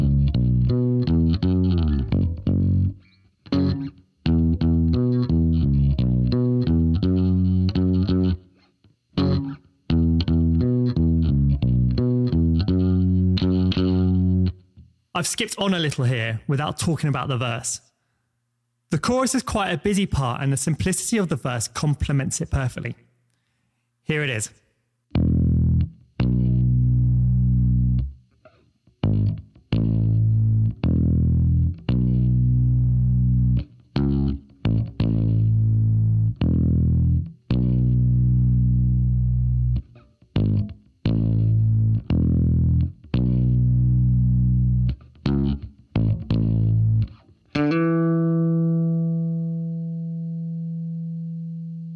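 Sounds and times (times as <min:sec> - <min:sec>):
distorted bass guitar playing sustained root notes: 0:00.0 - 0:08.5, 0:09.2 - 0:14.6, 0:25.1 - 0:28.2, 0:29.0 - 0:51.9
speech: 0:15.2 - 0:17.9, 0:18.9 - 0:23.0, 0:24.1 - 0:25.2.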